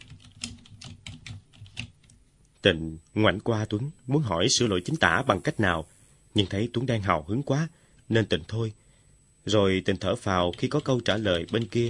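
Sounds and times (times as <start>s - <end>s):
slow hesitant typing on a computer keyboard: 0.0s - 2.2s, 10.4s - 11.8s
speech: 2.6s - 8.8s, 9.4s - 11.8s.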